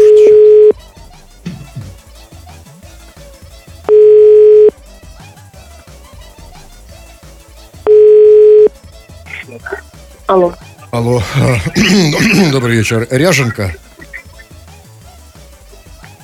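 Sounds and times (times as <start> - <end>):
telephone ringback tone while placing a call: 0.0 - 0.8, 3.9 - 4.7, 7.9 - 8.7
music: 0.0 - 16.2
speech: 10.3 - 13.8
laughter: 10.8 - 14.5.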